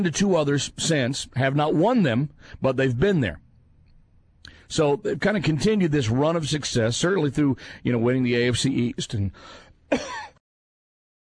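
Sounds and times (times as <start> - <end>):
speech: 0.0 - 3.4, 4.7 - 10.3
throat clearing: 9.9 - 10.4.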